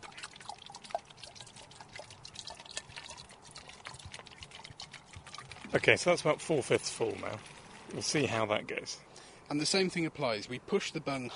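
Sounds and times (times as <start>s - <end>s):
water pouring into a plastic bottle with gurgling trickle: 0.0s - 8.4s
speech: 5.7s - 11.3s.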